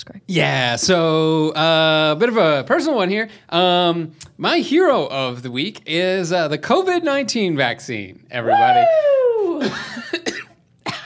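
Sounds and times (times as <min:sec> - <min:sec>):
speech: 0:00.0 - 0:10.0
falling vocal whoop: 0:08.4 - 0:09.8
person coughing: 0:10.1 - 0:11.0.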